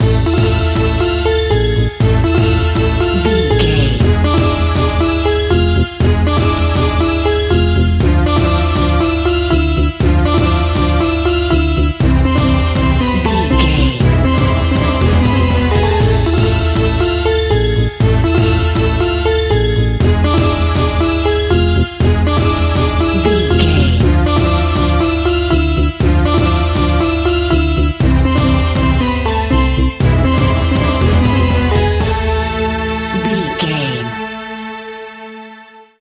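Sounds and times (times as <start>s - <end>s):
groovy powerful exotic Middle Eastern world music: 0.0s - 35.9s.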